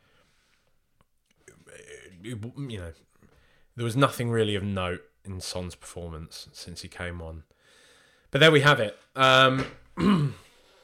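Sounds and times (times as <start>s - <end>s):
speech: 2.2s - 3.2s, 3.8s - 7.6s, 8.3s - 10.4s
person coughing: 10.0s - 10.5s.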